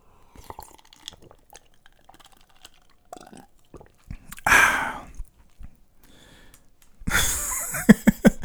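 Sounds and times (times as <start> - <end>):
slurping sips of hot tea: 0.0 - 5.3
laughter: 7.1 - 8.4.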